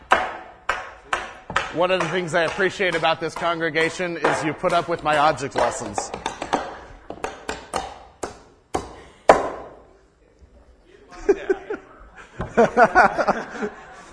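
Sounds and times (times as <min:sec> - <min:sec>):
hammer striking nails: 0:00.0 - 0:09.8
speech: 0:01.7 - 0:06.2, 0:12.6 - 0:13.8
voices murmuring and chuckling in the room: 0:10.2 - 0:14.1.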